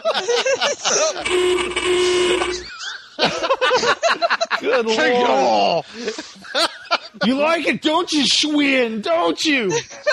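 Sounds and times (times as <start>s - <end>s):
laughter: 0.0s - 1.3s, 2.6s - 7.4s, 9.6s - 10.1s
speech: 0.2s - 3.9s, 4.8s - 10.1s
long blaring horn blast: 1.2s - 2.7s.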